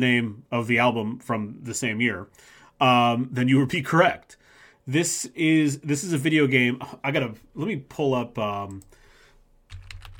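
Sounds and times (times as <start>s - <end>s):
speech: 0.0s - 9.0s
typing on a computer keyboard: 9.7s - 10.1s.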